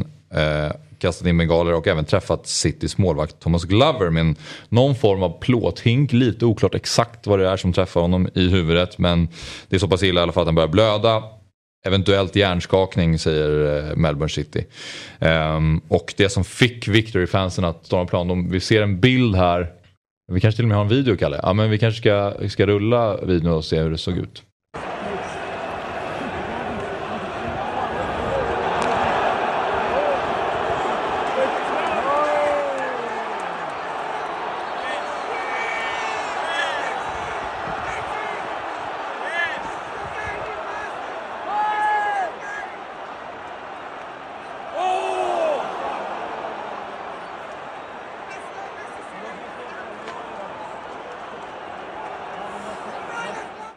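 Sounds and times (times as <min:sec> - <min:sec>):
speech: 0:00.4 - 0:24.9
stadium crowd roaring at an Australian football match: 0:24.8 - 0:53.7.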